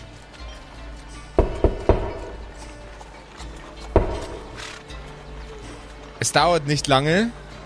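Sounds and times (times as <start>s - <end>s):
knocking on a door: 1.4s - 2.5s, 4.0s - 4.6s
speech: 6.2s - 7.4s.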